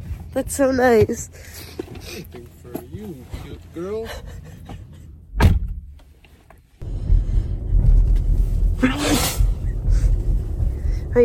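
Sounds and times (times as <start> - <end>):
low engine-like rumble: 0.0 - 11.2
vehicle noise: 0.0 - 11.2
speech: 0.4 - 4.8, 8.8 - 9.4
person sneezing: 8.8 - 9.5.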